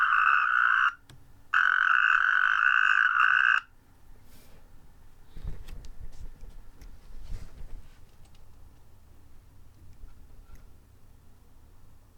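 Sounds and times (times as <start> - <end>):
natterjack toad giving rattling trills in garrigue in Hérault, France: 0.0 - 3.7
quiet background rustling: 4.2 - 8.9.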